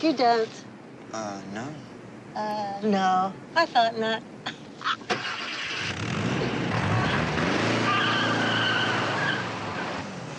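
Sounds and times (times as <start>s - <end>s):
speech: 0.0s - 6.0s
car engine revving and pulling away: 4.7s - 10.3s
car tires skidding and squealing: 5.6s - 10.2s.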